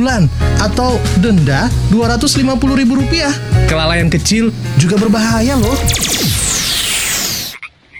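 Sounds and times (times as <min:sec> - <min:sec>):
speech: 0:00.0 - 0:06.7
burst of broadband noise: 0:03.0 - 0:07.6.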